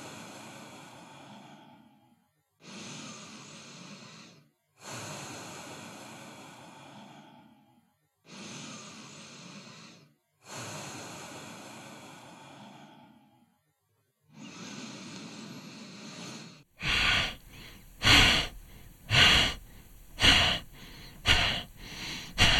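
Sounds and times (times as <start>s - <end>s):
long slow airy deep breaths in a breathing exercise: 0.0s - 13.6s, 14.3s - 22.5s
short forceful bursts of breath in an energizing breathing exercise: 2.6s - 7.6s, 8.3s - 13.2s, 14.4s - 22.5s.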